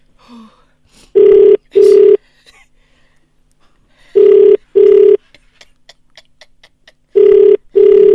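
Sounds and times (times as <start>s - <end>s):
telephone ringback tone on an unanswered outgoing call: 1.2s - 2.2s, 4.2s - 5.2s, 7.2s - 8.1s.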